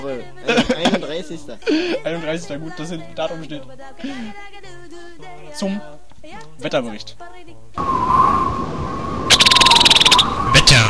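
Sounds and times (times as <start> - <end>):
speech: 0.0 - 6.0, 6.6 - 8.6
laughter: 0.5 - 2.0
bird rapid rattling trill: 9.3 - 10.3
bird call with sustained whistling tone: 9.3 - 10.8.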